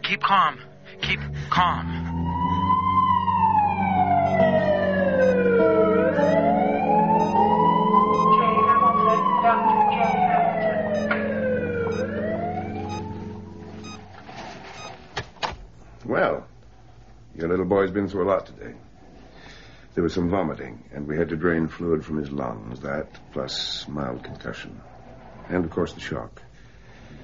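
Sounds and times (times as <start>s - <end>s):
speech: 0.1s - 2.0s, 16.1s - 16.5s, 17.4s - 18.8s, 20.0s - 24.9s, 25.5s - 26.5s
ambulance siren wailing: 2.0s - 14.0s.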